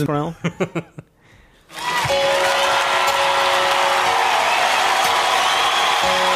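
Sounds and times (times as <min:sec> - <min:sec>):
speech: 0:00.0 - 0:01.0
crowd clapping: 0:01.7 - 0:06.3.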